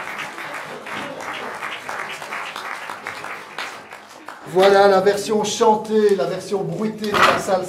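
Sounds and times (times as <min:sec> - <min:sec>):
crowd applauding: 0:00.0 - 0:05.0
speech: 0:04.5 - 0:07.6.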